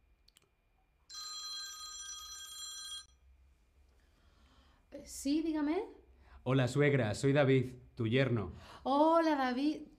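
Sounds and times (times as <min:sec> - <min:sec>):
telephone ringing tone for an outgoing call: 0:01.1 - 0:03.2
speech: 0:05.0 - 0:09.9.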